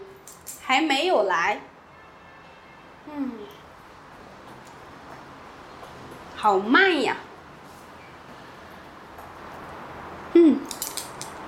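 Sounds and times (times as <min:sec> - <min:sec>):
speech: 0:00.7 - 0:01.7, 0:03.1 - 0:03.5, 0:06.4 - 0:07.3
keys jingling: 0:10.7 - 0:11.4.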